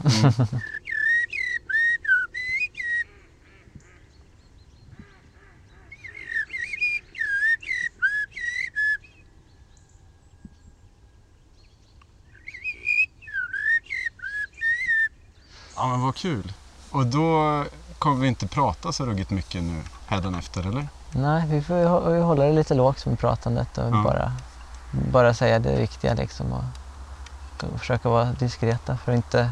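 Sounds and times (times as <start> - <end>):
laughter: 0.0 - 0.8
speech: 0.0 - 0.8, 15.9 - 26.8, 27.6 - 29.5
person whistling in imitation of bird calls: 0.2 - 3.0, 6.0 - 9.2, 12.4 - 15.1.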